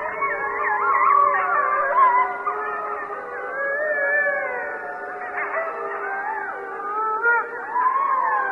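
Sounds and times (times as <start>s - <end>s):
Mexican wolf chorus howling: 0.0s - 8.5s.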